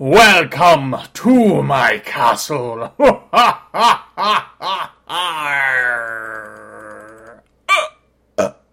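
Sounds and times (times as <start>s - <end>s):
speech: 0.0s - 6.5s
long drawn-out burp: 4.6s - 8.7s
person hiccuping: 7.2s - 8.7s.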